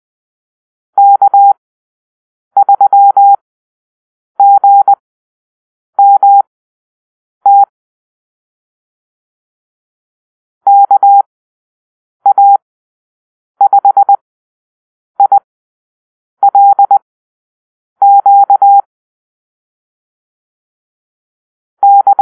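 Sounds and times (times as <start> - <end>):
morse code call-sign drill: 1.0 - 1.6, 4.4 - 5.0, 6.0 - 6.4, 7.5 - 7.7, 10.7 - 11.3, 12.3 - 12.6, 13.6 - 14.2, 15.2 - 15.5, 16.4 - 17.0, 18.0 - 18.9, 21.8 - 22.2.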